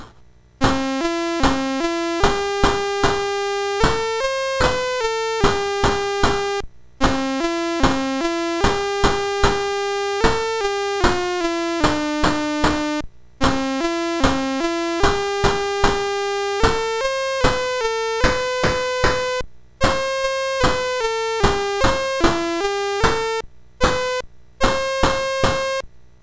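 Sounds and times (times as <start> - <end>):
chiptune music on MOS 6581 chip programmed in BASIC: 0.6 - 25.8.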